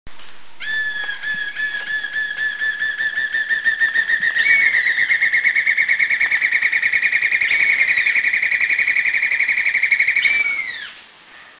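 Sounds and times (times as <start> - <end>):
Black-and-yellow broadbill calling in Krung Ching Thailand: 0.6 - 11.0.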